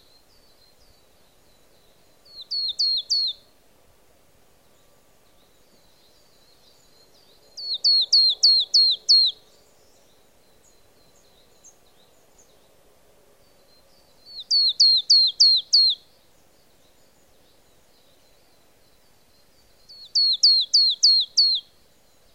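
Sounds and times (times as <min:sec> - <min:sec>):
marsh tit calling thin high downward-sweeping notes: 0:02.3 - 0:03.4, 0:07.6 - 0:09.4, 0:14.3 - 0:16.0, 0:19.9 - 0:21.6.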